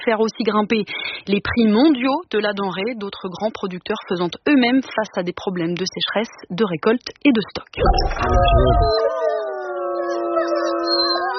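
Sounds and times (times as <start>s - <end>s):
speech: 0.0s - 9.4s
wolves howling: 8.0s - 11.3s.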